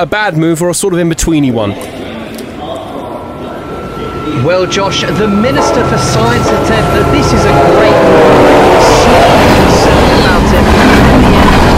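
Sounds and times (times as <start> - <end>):
speech: 0.0 - 2.1, 4.3 - 10.3
train roaring past at a station: 1.9 - 11.7
brief high-pitched metallic squeals: 3.1 - 10.6
wheels rumbling on track: 3.5 - 11.7.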